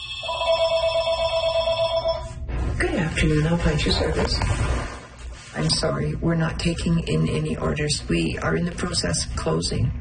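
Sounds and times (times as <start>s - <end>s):
telephone ringing at a closing shoe repair shop: 0.0s - 2.4s
speech: 3.2s - 4.9s, 5.6s - 9.9s.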